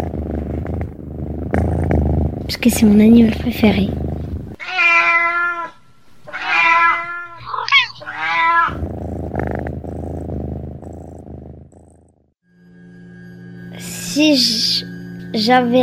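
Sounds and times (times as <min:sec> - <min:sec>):
cat purring: 0:00.0 - 0:04.6, 0:07.4 - 0:12.3
speech: 0:02.5 - 0:04.0, 0:14.2 - 0:14.7, 0:15.4 - 0:15.8
cat meowing in drawn-out wavering cries: 0:04.6 - 0:08.8.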